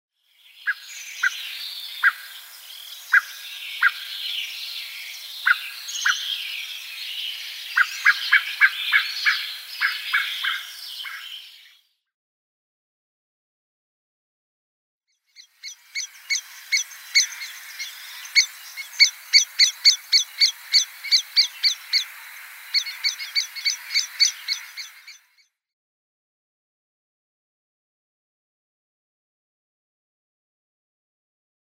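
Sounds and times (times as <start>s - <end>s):
Eurasian blackbird singing: 0.6s - 11.8s, 15.4s - 25.4s.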